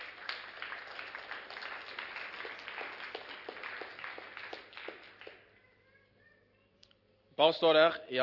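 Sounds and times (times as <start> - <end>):
crowd applauding: 0.0 - 5.5
speech: 7.4 - 8.2.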